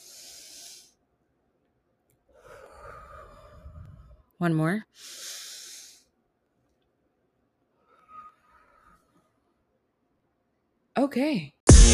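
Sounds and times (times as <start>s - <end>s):
slow deep breath: 0.0s - 1.0s, 2.2s - 4.3s, 5.0s - 6.2s, 7.7s - 9.4s
speech: 4.4s - 5.2s, 11.0s - 11.6s.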